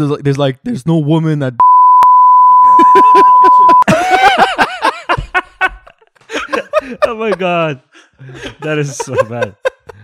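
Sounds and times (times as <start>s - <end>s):
speech: 0.0s - 1.8s, 6.8s - 9.7s
censor bleep: 1.6s - 3.9s
people laughing and chuckling: 2.6s - 10.0s.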